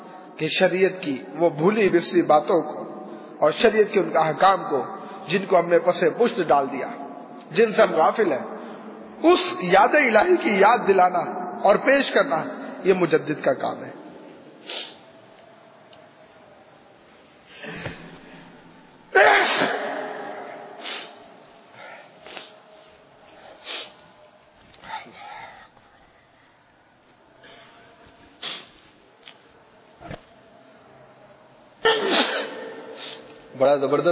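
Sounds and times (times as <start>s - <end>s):
speech: 0.4s - 2.8s, 3.4s - 8.5s, 9.2s - 14.0s, 14.6s - 14.9s, 33.6s - 34.1s
breaths: 3.0s - 3.4s, 4.9s - 5.2s, 8.5s - 9.2s, 14.3s - 15.2s, 17.5s - 18.7s, 20.8s - 29.0s, 32.9s - 33.5s
sniffs: 14.6s - 15.1s, 20.8s - 21.2s, 21.8s - 22.8s, 23.4s - 24.0s, 28.4s - 29.0s, 32.1s - 33.4s
person sneezing: 19.2s - 19.8s, 20.8s - 21.2s, 28.4s - 28.8s, 31.8s - 33.3s.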